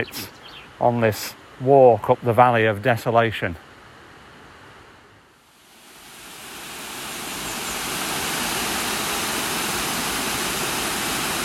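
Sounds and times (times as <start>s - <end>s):
speech: 0.0s - 3.7s
waterfall rushing: 5.6s - 11.4s.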